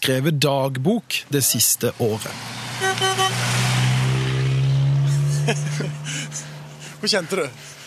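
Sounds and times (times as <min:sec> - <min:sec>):
speech: 0:00.0 - 0:02.7, 0:05.5 - 0:06.2, 0:07.0 - 0:07.8
car engine driving by: 0:01.7 - 0:07.8
car horn toots: 0:02.8 - 0:03.6
laughter: 0:05.0 - 0:07.8.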